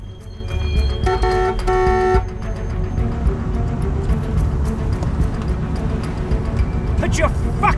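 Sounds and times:
car horn honking in slow-moving traffic: 0:00.0 - 0:03.1
rumble of engines and road noise: 0:00.0 - 0:07.7
speech: 0:07.2 - 0:07.4.

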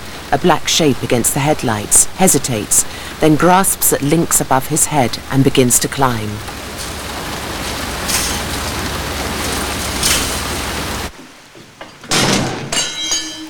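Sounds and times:
steady rain-like hiss: 0:00.0 - 0:13.4
speech: 0:00.3 - 0:06.6
high warehouse door scraping and creaking open: 0:11.8 - 0:13.4.

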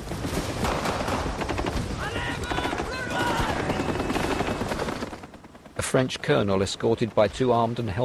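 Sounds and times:
helicopter landing with heavy rotor noise: 0:00.0 - 0:08.0
scattered shouting voices: 0:02.0 - 0:04.5
speech: 0:05.9 - 0:08.0.

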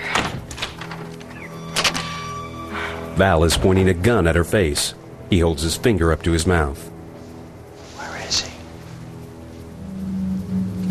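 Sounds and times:
door opening: 0:00.1 - 0:02.4
speech: 0:03.2 - 0:06.9.

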